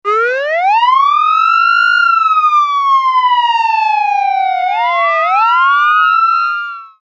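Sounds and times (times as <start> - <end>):
Code 3 siren: 0.0 - 7.0.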